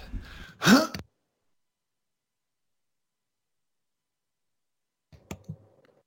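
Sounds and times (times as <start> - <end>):
throat clearing: 0.6 - 1.0.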